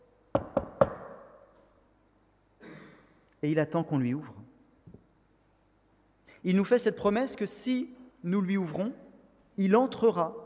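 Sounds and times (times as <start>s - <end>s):
knocking on a wooden door: 0.4s - 1.1s
speech: 3.4s - 4.4s, 6.4s - 9.0s, 9.6s - 10.4s.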